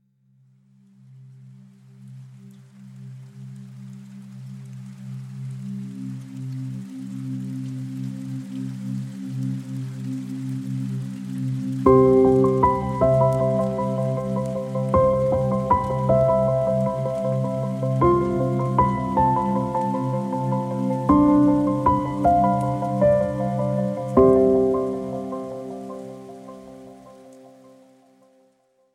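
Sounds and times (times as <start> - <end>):
tranquil rain instrumental music: 10.6 - 28.3.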